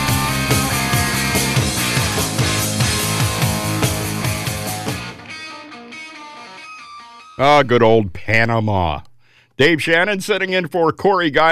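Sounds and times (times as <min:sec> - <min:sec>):
steady pounding drum beat: 0:00.0 - 0:05.1
hard rock song: 0:00.0 - 0:07.8
dense distorted guitars: 0:00.0 - 0:10.4
speech: 0:07.4 - 0:11.4.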